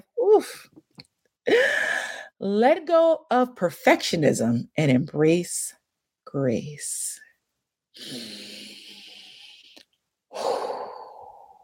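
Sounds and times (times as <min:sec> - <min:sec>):
speech: 0:00.4 - 0:00.8, 0:01.5 - 0:07.2, 0:08.0 - 0:08.7
deep breath: 0:08.0 - 0:11.6.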